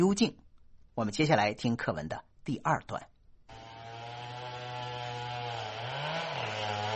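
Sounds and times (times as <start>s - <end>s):
speech: 0.0s - 0.4s, 1.0s - 3.1s
chainsaw felling trees in a forest: 3.5s - 6.9s.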